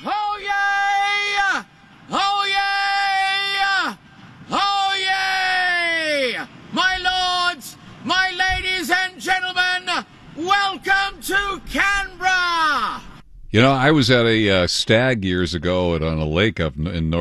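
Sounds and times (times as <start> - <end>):
man yelling at full volume in long strained shouts: 0.0 - 13.2
speech: 13.6 - 17.1.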